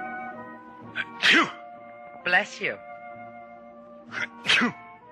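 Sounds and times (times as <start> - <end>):
person with a cold sneezing: 1.0 - 1.6, 4.1 - 4.8
person talking: 2.3 - 2.8.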